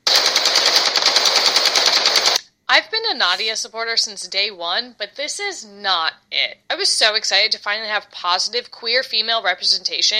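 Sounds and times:
rapid machine gun fire in a video game: 0.0 - 2.4
speech: 2.7 - 10.1.

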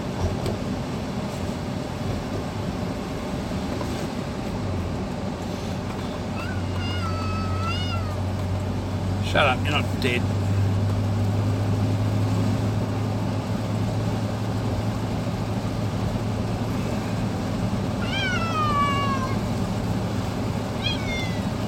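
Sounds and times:
steady low engine-like hum: 0.0 - 21.6
cat meowing: 6.3 - 8.4, 18.0 - 19.5, 20.7 - 21.6
speech: 9.4 - 10.4.

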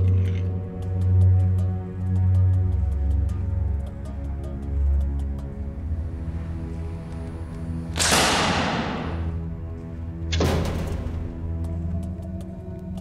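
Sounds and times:
steady low music: 0.0 - 12.9
arrows shot from 23-kilo bows whooshing: 7.9 - 9.6.

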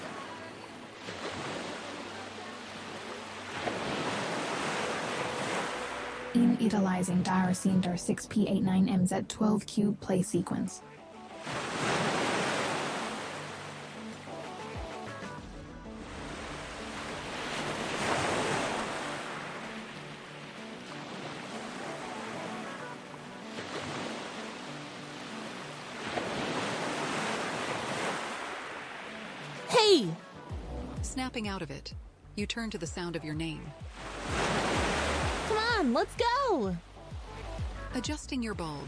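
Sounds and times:
ocean waves at a beach: 0.0 - 8.0, 10.4 - 32.2, 32.8 - 38.8
speech: 6.3 - 10.9, 31.3 - 34.6, 35.5 - 36.9, 38.0 - 38.8.

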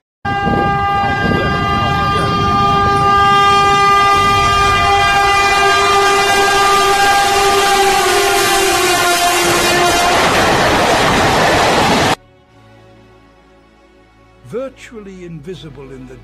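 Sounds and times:
train rumbling past: 0.3 - 12.2
speech: 15.3 - 16.2.

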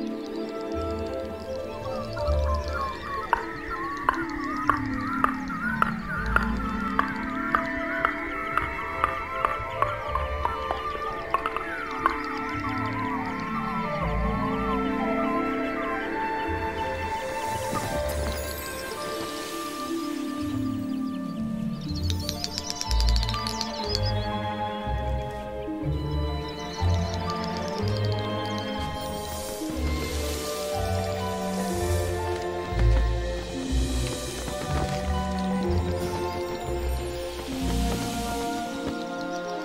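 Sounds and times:
male birds cooing in chorus at a moorland display ground: 0.0 - 39.6
hissing bursts of male birds: 17.2 - 21.0, 29.0 - 34.6.

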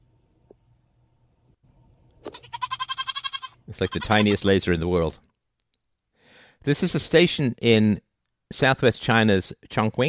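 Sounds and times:
low hum: 0.0 - 10.0
goat bleating: 2.3 - 4.4
speech: 3.7 - 5.3, 6.6 - 10.0.

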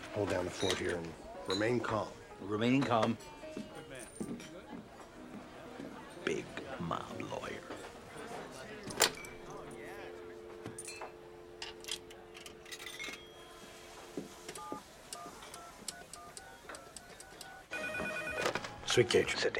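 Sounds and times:
faint murmur: 0.0 - 19.5
speech: 0.2 - 4.5, 19.0 - 19.5
telephone ringing tone on an outgoing call: 11.6 - 18.8.

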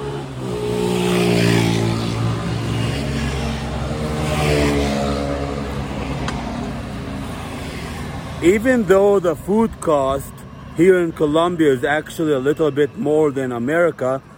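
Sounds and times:
loud motorcycle engine revving: 0.0 - 8.5
speech: 8.4 - 14.3.

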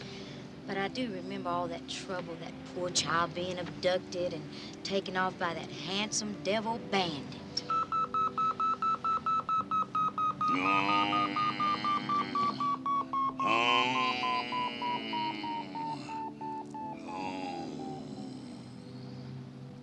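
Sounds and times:
speech: 0.7 - 7.4, 10.6 - 11.4
hemorrhage gauge beeping in rapid high electronic beeps: 7.7 - 17.0.

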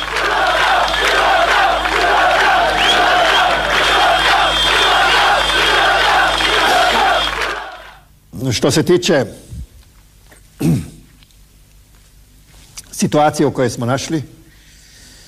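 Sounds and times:
angry crowd of protesters shouting in Croatia while burning Yugoslav flags: 0.0 - 8.1
speech: 8.5 - 9.5, 13.0 - 14.4.

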